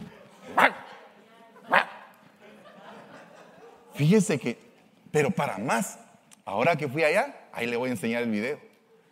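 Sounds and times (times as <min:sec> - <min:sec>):
laughter: 0:00.0 - 0:04.1
dog barking: 0:00.6 - 0:00.9, 0:01.7 - 0:02.0
speech: 0:04.0 - 0:08.7.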